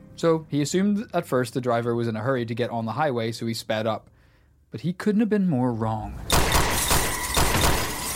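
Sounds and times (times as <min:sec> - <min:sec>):
speech: 0:00.2 - 0:04.1, 0:04.7 - 0:06.4
gunshots: 0:06.2 - 0:08.1
car rear windscreen glass shattering: 0:06.5 - 0:08.1.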